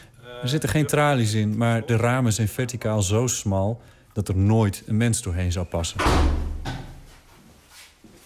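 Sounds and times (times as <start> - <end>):
speech: 0.3 - 6.4
door closing with a thud: 6.0 - 7.1.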